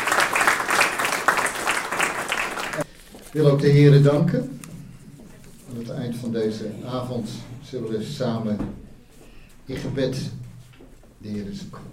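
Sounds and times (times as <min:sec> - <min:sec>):
audience applause after a song: 0:00.0 - 0:02.9
speech: 0:03.4 - 0:04.6, 0:05.7 - 0:08.8, 0:09.7 - 0:10.4, 0:11.2 - 0:11.9.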